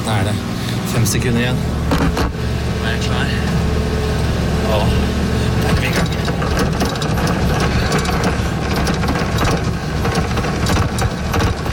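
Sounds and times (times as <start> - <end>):
speech: 0.1 - 3.7, 4.7 - 7.7
treadmill motor whirring at high speed: 1.8 - 11.7
treadmill belt clattering: 5.6 - 11.7.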